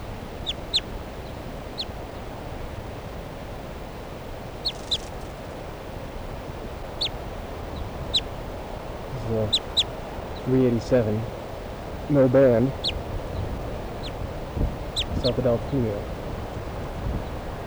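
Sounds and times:
soft alternate type 2 flight calls from adult female bird in lodgepole pine: 0.0s - 17.6s
steady hiss of noise: 0.0s - 17.6s
speech: 10.5s - 11.4s, 12.1s - 12.9s, 15.2s - 16.1s.

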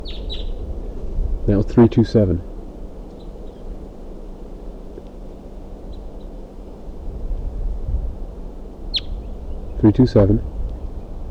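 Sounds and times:
caged male crossbill chip calls: 0.0s - 0.6s, 1.5s - 3.5s, 8.9s - 10.5s
low rumbling background noise: 0.0s - 4.0s, 7.0s - 11.2s
speech: 1.5s - 2.5s, 9.9s - 10.6s.

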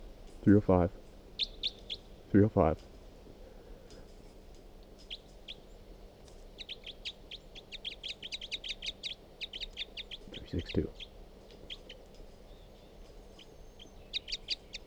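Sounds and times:
low steady hum: 0.0s - 14.8s
speech: 0.4s - 1.5s, 2.3s - 2.9s, 10.5s - 11.0s
bird calling with high chirps: 0.4s - 2.8s, 5.0s - 14.8s.

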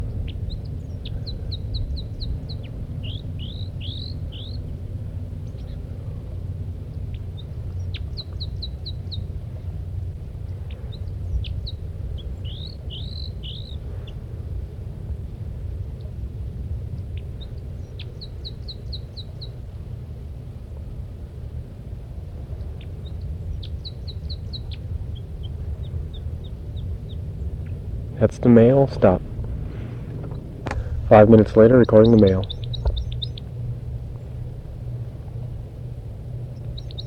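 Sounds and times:
female bird calling at her nest: 0.0s - 4.8s, 5.4s - 5.9s, 6.9s - 9.4s, 10.4s - 14.2s, 17.0s - 19.6s, 22.6s - 27.9s, 28.6s - 34.4s, 35.8s - 37.0s
low steady rumble: 0.0s - 37.0s
speech: 28.3s - 29.3s, 31.1s - 32.5s.

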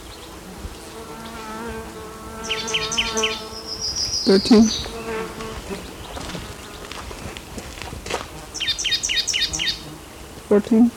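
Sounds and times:
black-throated gray warbler singing: 2.4s - 7.3s, 8.5s - 10.3s
speech: 3.1s - 3.5s, 4.2s - 5.0s, 10.5s - 10.9s.

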